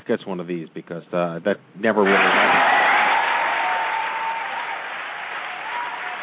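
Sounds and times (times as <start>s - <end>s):
speech: 0.1s - 2.8s
dense applause from a large crowd from a noise maker: 2.0s - 6.2s.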